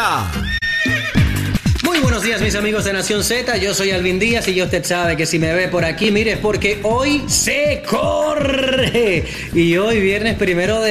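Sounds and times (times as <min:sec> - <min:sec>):
speech: 0:00.0 - 0:00.6, 0:02.2 - 0:10.8
horse neighing: 0:00.2 - 0:01.6.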